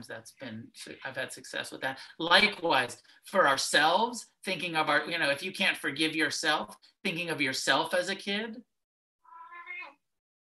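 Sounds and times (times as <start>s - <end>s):
speech: 0.0s - 8.7s
cat meowing: 9.2s - 10.0s.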